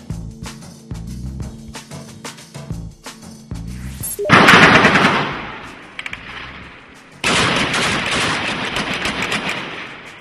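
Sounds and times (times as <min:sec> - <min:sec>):
machine-gun fire echoing off buildings in a city street: 0:04.3 - 0:06.1, 0:07.2 - 0:10.1.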